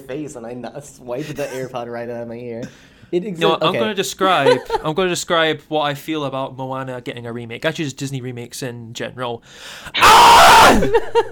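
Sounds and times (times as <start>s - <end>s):
speech: 0.0s - 11.3s
laughter: 4.3s - 5.0s, 10.7s - 11.3s
raspy guttural scream of frustration: 9.9s - 11.0s.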